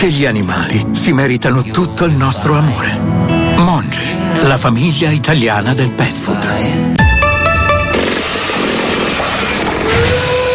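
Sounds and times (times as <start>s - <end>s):
speech: 0.0s - 7.1s
pulsing tonal whine: 7.4s - 10.5s
construction-site power tools and machinery: 7.9s - 10.5s.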